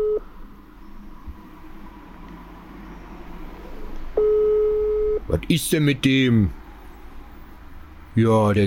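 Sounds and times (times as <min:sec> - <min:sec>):
ringback tone of an unanswered telephone call: 0:00.0 - 0:00.2, 0:04.2 - 0:05.2
speech: 0:05.3 - 0:06.6, 0:08.2 - 0:08.6.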